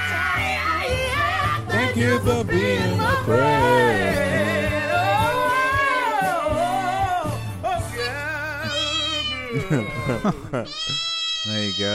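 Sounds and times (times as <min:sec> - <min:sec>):
steady musical backing: 0:00.1 - 0:10.8
speech: 0:02.0 - 0:04.4, 0:09.7 - 0:11.9
pitched cat meows strung into a bouncy novelty tune: 0:08.6 - 0:09.5, 0:10.7 - 0:11.9
laughter: 0:09.4 - 0:11.0.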